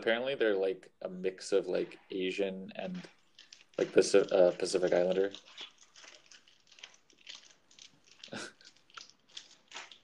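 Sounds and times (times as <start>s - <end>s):
speech: 0.0s - 3.2s, 3.8s - 5.7s
chewing a crunchy hockey stick snack: 2.8s - 10.0s.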